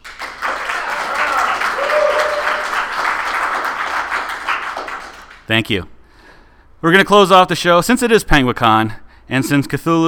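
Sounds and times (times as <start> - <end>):
live audience applauding: 0.0 - 5.5
faint whistles or cheers: 1.2 - 2.8
speech: 5.5 - 5.9, 6.8 - 10.0.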